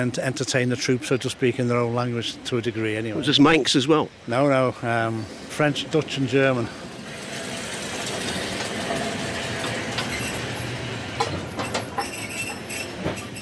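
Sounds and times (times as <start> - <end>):
speech: 0.0 - 6.9
train pulling up alongside: 0.0 - 13.3
train brakes squealing: 4.9 - 13.3.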